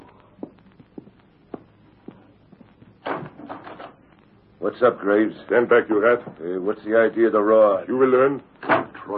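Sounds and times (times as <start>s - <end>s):
soft evenly spaced footsteps approaching: 0.0s - 4.3s
speech: 4.6s - 9.1s.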